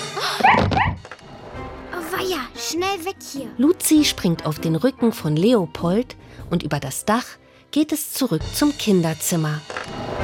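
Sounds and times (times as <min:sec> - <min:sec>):
agitated dog barking and yelping: 0:00.4 - 0:01.0
speech: 0:02.7 - 0:10.2.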